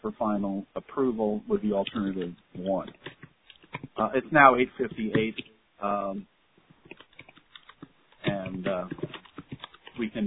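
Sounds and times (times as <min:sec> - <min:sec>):
speech: 0:00.0 - 0:03.2, 0:04.0 - 0:06.3, 0:08.5 - 0:09.0, 0:10.0 - 0:10.2
computer keyboard typing through a conference call: 0:01.8 - 0:04.0, 0:06.8 - 0:10.2.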